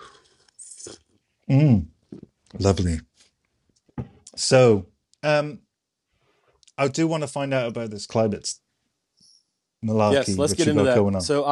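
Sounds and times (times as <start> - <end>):
person sipping hot tea: 0.0 - 1.2
speech: 0.9 - 3.1, 4.4 - 5.6, 6.8 - 8.6, 9.8 - 11.5.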